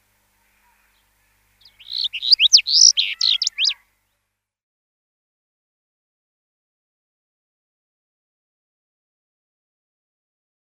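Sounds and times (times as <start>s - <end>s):
house bunting singing bright sweeping notes: 0.1s - 3.9s.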